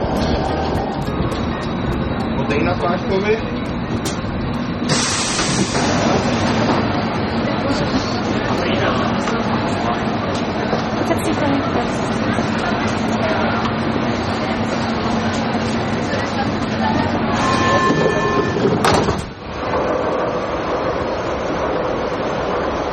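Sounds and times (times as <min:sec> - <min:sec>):
indistinct crowd chatter: 0:00.0 - 0:22.8
subway train rumble at a station: 0:00.0 - 0:22.9
high-pitched screech or air release: 0:17.2 - 0:18.9.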